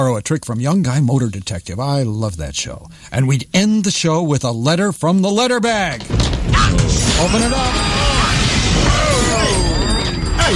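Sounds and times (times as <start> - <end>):
speech: 0.0 - 8.2
crash of breaking glass with shards clattering: 6.0 - 10.5.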